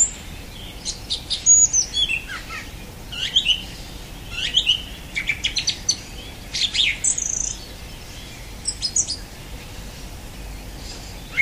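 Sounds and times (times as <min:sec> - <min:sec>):
song thrush singing high chirping notes and thin whistled phrase: 0:00.0 - 0:11.3.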